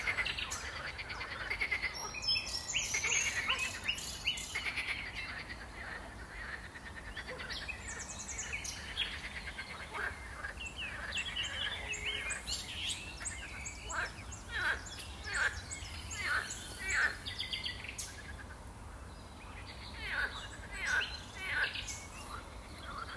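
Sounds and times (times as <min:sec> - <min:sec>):
frogs croaking in a pond chorus: 0:00.0 - 0:23.1
steady background noise: 0:00.0 - 0:23.1.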